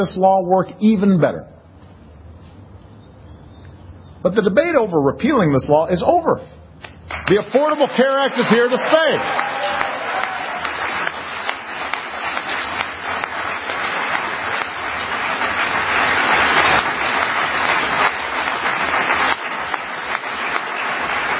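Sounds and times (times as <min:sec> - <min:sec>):
speech: 0:00.0 - 0:01.5, 0:04.2 - 0:06.6, 0:07.2 - 0:09.5
large crowd applauding: 0:07.1 - 0:21.3.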